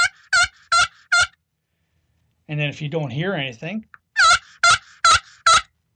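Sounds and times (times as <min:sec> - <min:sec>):
raspy turkey yelps played on a pot call: 0:00.0 - 0:01.4, 0:04.2 - 0:05.7
speech: 0:02.5 - 0:04.0.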